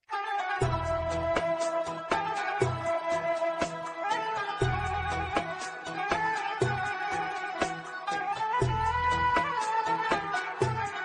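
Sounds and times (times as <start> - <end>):
Arabic tabla drumming: 0.4 - 11.0.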